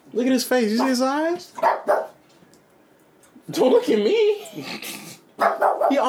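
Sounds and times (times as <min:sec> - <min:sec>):
speech: 0:00.1 - 0:02.0, 0:03.5 - 0:06.0
dog barking at the garbage: 0:00.8 - 0:02.2, 0:05.4 - 0:06.0.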